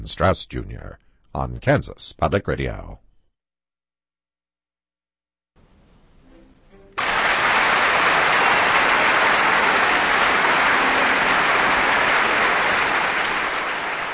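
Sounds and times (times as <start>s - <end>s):
speech: 0.0s - 3.0s
large crowd applauding in a big hall: 7.0s - 14.1s.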